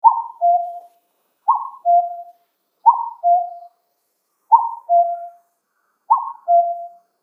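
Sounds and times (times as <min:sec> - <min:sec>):
cuckoo calling: 0:00.0 - 0:03.7, 0:04.5 - 0:05.5, 0:06.1 - 0:07.1.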